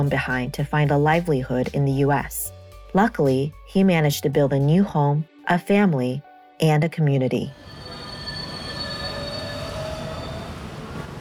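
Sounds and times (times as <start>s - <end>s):
speech: 0.0s - 7.8s
elevated 7 subway train passing near Roosevelt Avenue station in Jackson Heights: 7.5s - 11.2s
high sustained metallic subway wheel squeals: 7.5s - 11.2s.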